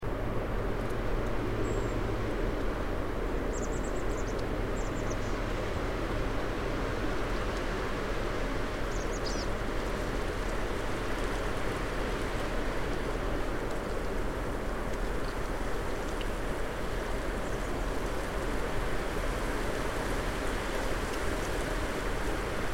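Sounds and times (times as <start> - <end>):
wind: 0.0 - 22.7
chickadees calling: 8.9 - 9.5.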